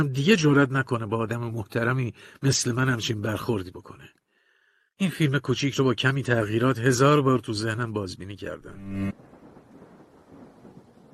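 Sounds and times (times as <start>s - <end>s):
speech: 0.0s - 4.2s, 5.0s - 9.3s
low rumbling undertone: 8.7s - 9.2s
steady dense rain: 9.1s - 11.1s.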